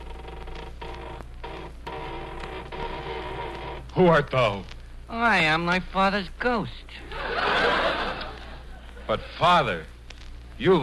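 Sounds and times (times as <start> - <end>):
door creaking slowly open: 0.0 - 4.0
speech: 4.0 - 7.6, 9.1 - 9.9, 10.6 - 10.8
laughter: 7.0 - 9.4.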